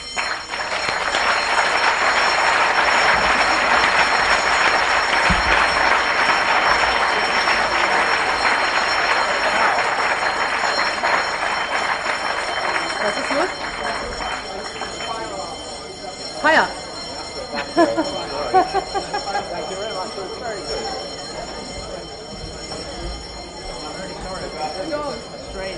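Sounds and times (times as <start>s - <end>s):
fire alarm bell ringing in building: 0.0s - 25.7s
people's voices and murmuring: 0.6s - 25.7s
laughter: 0.7s - 15.6s, 16.5s - 22.2s.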